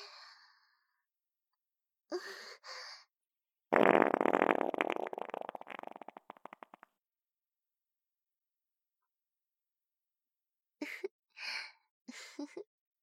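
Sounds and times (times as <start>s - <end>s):
fart through spandex leggings: 3.7s - 7.0s.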